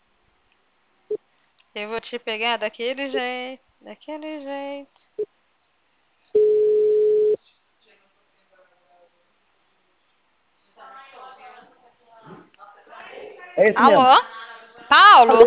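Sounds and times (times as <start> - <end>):
speech: 1.8 - 5.4, 13.6 - 14.3, 14.9 - 15.4
telephone beep after a dropped call: 6.4 - 7.4.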